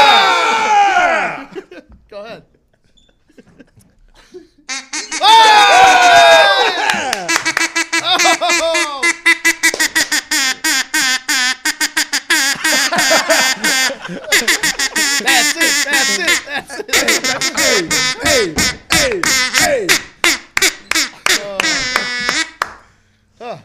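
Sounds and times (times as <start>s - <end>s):
laughter: 0.0s - 9.2s, 12.4s - 19.9s, 21.1s - 22.6s
duck call blown from the wrong end quacking: 4.7s - 5.7s, 7.3s - 22.7s.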